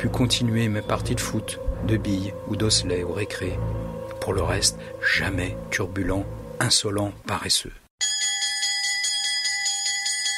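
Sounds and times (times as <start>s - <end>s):
speech: 0.0s - 7.8s
bell ringing: 8.0s - 10.3s.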